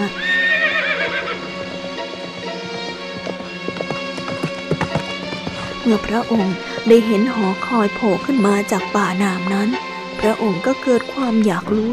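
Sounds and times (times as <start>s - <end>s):
ridden horse neighing: 0.0s - 2.2s
low sustained musical backdrop: 0.0s - 11.9s
clip-clopping hoofbeats of a ridden horse: 0.3s - 8.7s
speech: 5.9s - 11.9s.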